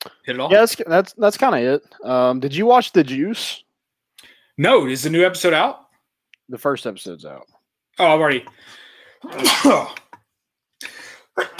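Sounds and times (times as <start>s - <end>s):
speech: 0.3s - 3.6s, 4.6s - 5.8s, 6.5s - 10.0s, 11.4s - 11.5s
person sneezing: 9.2s - 10.1s, 10.8s - 11.5s.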